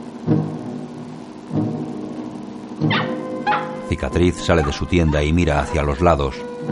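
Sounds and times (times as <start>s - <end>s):
dog barking in an Indian camp in a desert valley: 2.9s - 3.8s
speech: 3.9s - 6.6s.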